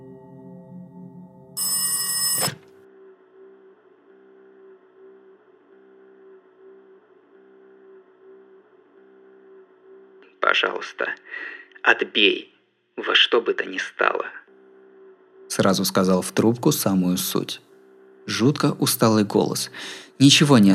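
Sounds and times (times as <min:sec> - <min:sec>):
telephone ringing in a home: 0:01.5 - 0:02.8
speech: 0:10.6 - 0:14.4, 0:15.5 - 0:17.7, 0:18.3 - 0:20.7.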